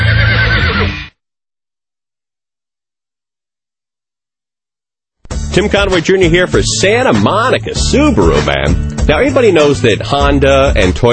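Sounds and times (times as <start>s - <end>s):
horse neighing: 0.0s - 1.1s
speech: 5.6s - 11.1s.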